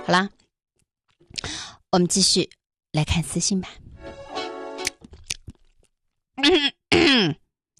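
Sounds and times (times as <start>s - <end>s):
speech: 0.1s - 0.4s, 1.3s - 3.9s, 6.4s - 7.4s
person clearing throat with strained vocal noise and small clicks: 6.5s - 7.4s
harsh rasping coughs: 6.9s - 7.4s.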